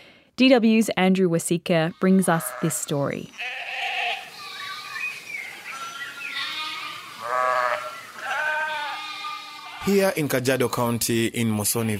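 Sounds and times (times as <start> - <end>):
speech: 0.4 - 3.6, 9.8 - 11.9
flock of sheep bleating while being herded: 1.9 - 11.0.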